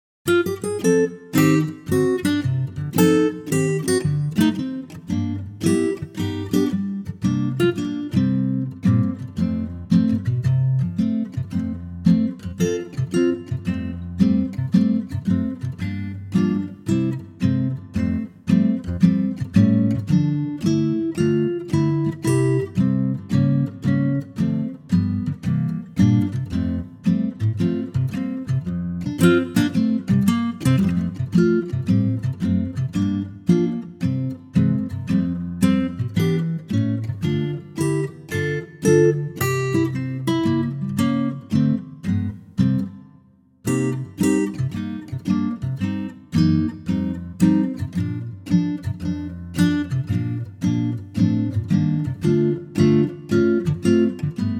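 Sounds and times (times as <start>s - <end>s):
acoustic guitar in F: 0.3s - 54.5s.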